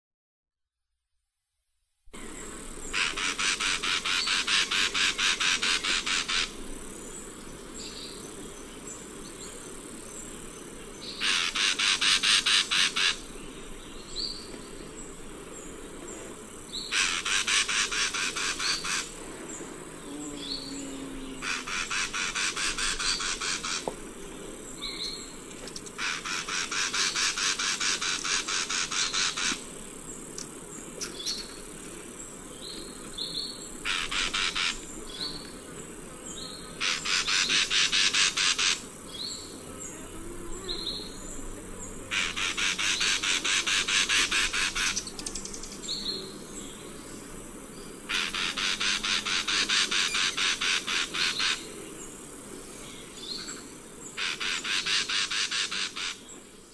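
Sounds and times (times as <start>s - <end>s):
Habia rubica calling: 2.2s - 6.7s, 11.0s - 14.7s, 16.7s - 24.1s, 24.7s - 29.8s, 32.7s - 56.7s.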